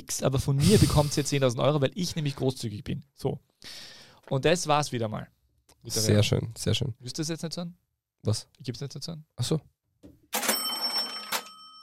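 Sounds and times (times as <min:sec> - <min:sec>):
speech: 0:00.1 - 0:10.4
mechanical cash register drawer sliding open: 0:10.4 - 0:11.6
mechanical cash register bell ringing: 0:10.4 - 0:11.8.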